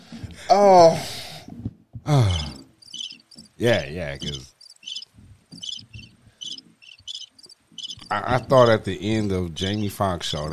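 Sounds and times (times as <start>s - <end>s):
speech: 0.5s - 1.1s, 2.1s - 2.4s, 3.6s - 4.5s, 8.1s - 10.5s
crickets chirping sound effect: 2.3s - 3.6s, 4.2s - 8.5s.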